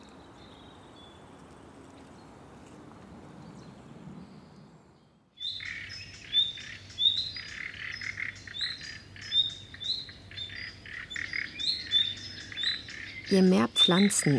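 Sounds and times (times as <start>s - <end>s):
birds singing in a forest: 3.4s - 14.3s
speech: 13.3s - 14.3s.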